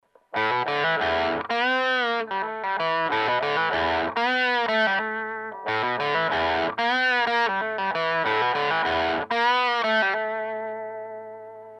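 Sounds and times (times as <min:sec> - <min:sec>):
electric guitar with humbucker pickup: 0:00.0 - 0:11.7.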